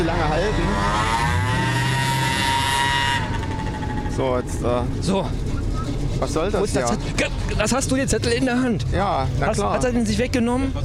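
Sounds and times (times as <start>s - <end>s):
speech: 0.0s - 1.0s, 4.2s - 5.5s, 6.2s - 10.8s
big car engine droning as it drives away: 0.0s - 10.8s.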